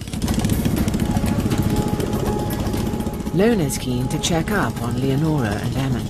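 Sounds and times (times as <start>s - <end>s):
boat motor droning on a river: 0.0s - 6.0s
speech: 3.4s - 6.0s.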